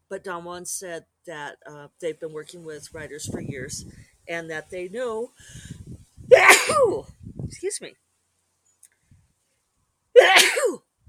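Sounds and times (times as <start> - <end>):
speech: 0.1 - 5.8, 6.4 - 8.0
sneezes: 6.3 - 7.0, 10.2 - 10.8.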